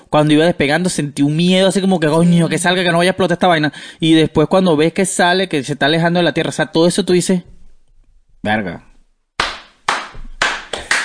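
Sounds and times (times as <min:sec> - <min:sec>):
speech: 0:00.1 - 0:07.6, 0:08.4 - 0:08.9
hands clapping: 0:09.4 - 0:11.0.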